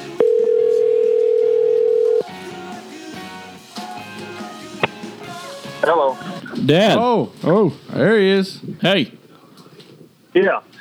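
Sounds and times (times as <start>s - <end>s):
telephone ringback tone during outgoing call: 0.2s - 2.3s
speech: 5.9s - 9.2s, 10.4s - 10.6s.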